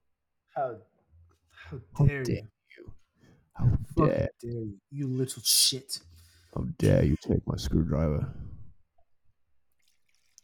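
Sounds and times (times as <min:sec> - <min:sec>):
speech: 0:00.6 - 0:00.9, 0:01.6 - 0:02.6, 0:03.6 - 0:08.5
liquid being poured: 0:09.7 - 0:10.4.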